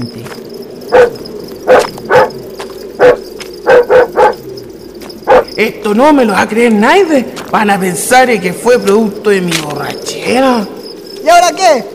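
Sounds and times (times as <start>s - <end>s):
speech: 0.0s - 1.2s, 5.6s - 11.9s
dog barking on a dark nighttime road: 0.9s - 2.4s, 3.0s - 4.4s, 5.3s - 5.5s.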